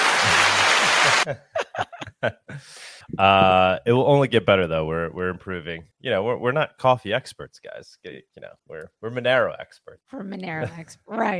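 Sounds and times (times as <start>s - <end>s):
applause: 0.0s - 1.3s
laughter: 0.1s - 2.6s
speech: 1.2s - 1.5s, 2.2s - 11.3s.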